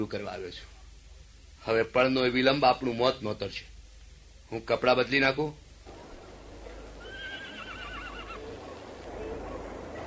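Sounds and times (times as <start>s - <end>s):
speech: 0.0s - 0.8s, 1.6s - 3.7s, 4.5s - 5.6s
hiss: 0.0s - 10.0s
horse neighing: 7.0s - 8.6s.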